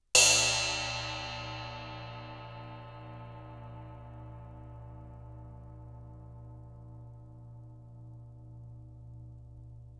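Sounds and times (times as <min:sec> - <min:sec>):
crash cymbal: 0:00.2 - 0:04.8.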